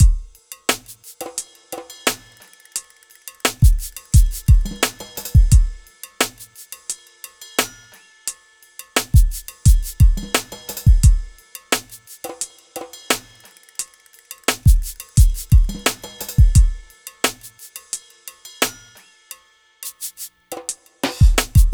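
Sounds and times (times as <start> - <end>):
hip-hop drum loop with drums and percussion: 0.0 - 2.7, 3.4 - 6.8, 9.0 - 13.5, 14.4 - 17.7, 19.8 - 21.7.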